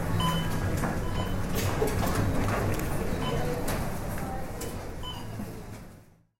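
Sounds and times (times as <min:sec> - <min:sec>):
city shopping mall ambience: 0:00.0 - 0:06.2.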